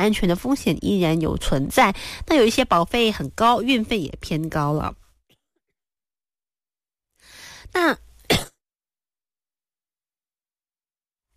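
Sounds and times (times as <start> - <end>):
speech: 0.0 - 5.0, 7.7 - 8.0
person coughing or clearing throat: 8.3 - 8.6.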